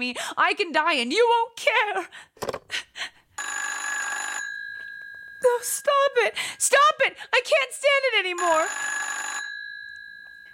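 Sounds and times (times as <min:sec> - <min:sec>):
speech: 0:00.0 - 0:02.8, 0:05.4 - 0:09.1
old-fashioned telephone bell ringing: 0:03.4 - 0:06.6, 0:08.4 - 0:10.5.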